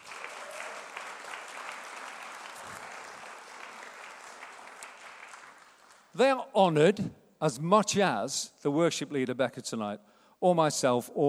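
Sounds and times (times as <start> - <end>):
sustained applause from a large audience: 0.0 - 6.1
speech: 6.2 - 11.2.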